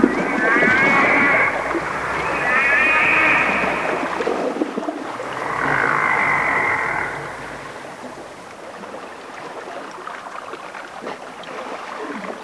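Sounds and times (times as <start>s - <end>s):
rushing noise: 0.0s - 8.6s
whale calls: 0.0s - 8.6s.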